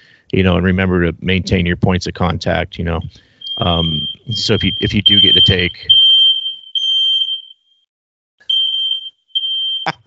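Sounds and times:
speech: 0:00.3 - 0:06.1
fire alarm sounding in high-pitched electronic tones: 0:03.4 - 0:10.0.

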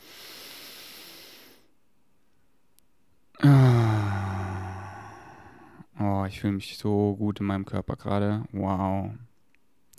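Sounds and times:
deep breath with voiced sighing exhale: 0:00.0 - 0:01.7, 0:03.4 - 0:05.9
speech: 0:06.4 - 0:09.3.

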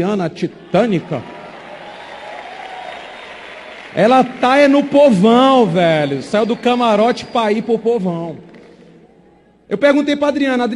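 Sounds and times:
speech: 0:00.0 - 0:01.3, 0:03.9 - 0:08.5, 0:09.7 - 0:10.7
audience applauding: 0:00.8 - 0:07.8.

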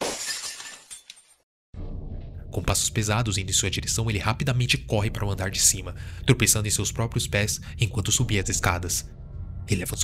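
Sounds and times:
kitchen window glass shattering: 0:00.0 - 0:01.4
tinkling glass shards falling: 0:00.0 - 0:01.4
dull low rumbling noise: 0:01.8 - 0:10.0
speech: 0:02.5 - 0:10.0.

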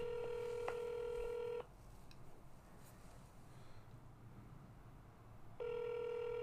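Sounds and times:
phone line ringback tone heard through a handset: 0:00.0 - 0:01.7, 0:05.6 - 0:06.4.

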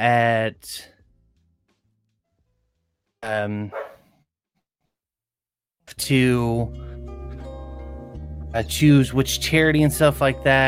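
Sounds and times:
speech: 0:00.0 - 0:01.0, 0:03.2 - 0:03.9, 0:05.9 - 0:06.9, 0:08.5 - 0:10.6
dog giving a loud whining bark with falling pitch: 0:03.7 - 0:04.1.

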